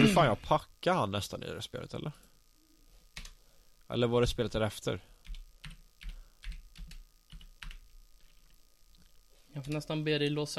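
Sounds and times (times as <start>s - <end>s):
speech: 0.1s - 2.3s, 3.9s - 5.1s, 9.6s - 10.5s
typing on a computer keyboard: 3.2s - 3.4s, 5.2s - 8.3s.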